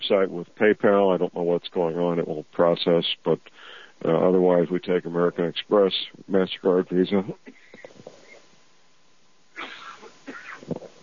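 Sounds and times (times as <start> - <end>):
speech: 0.1 - 7.6
raspy coughing: 9.6 - 10.8
person clearing throat: 9.6 - 10.9.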